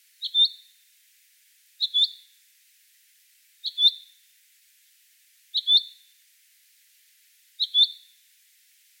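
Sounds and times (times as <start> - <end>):
common chaffinch Fringilla coelebs chinking calls: 0.2 - 0.7, 1.8 - 2.2, 3.6 - 4.1, 5.6 - 6.0, 7.6 - 8.1.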